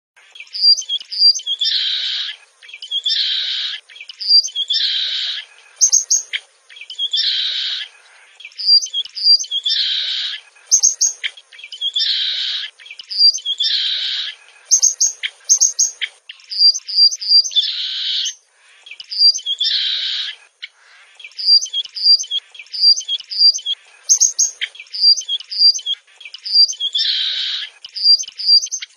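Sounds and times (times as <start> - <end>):
irataua pequeno singing: 0.2 - 28.9.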